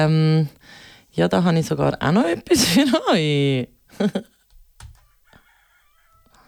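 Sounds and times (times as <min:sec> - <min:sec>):
speech: 0:00.0 - 0:04.3
rooster crowing faintly in a garden full of hens: 0:05.0 - 0:06.4.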